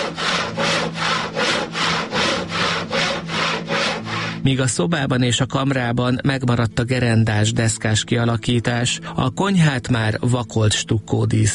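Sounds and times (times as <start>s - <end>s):
hand saw cutting through wood: 0.0s - 4.6s
speech: 4.4s - 11.5s.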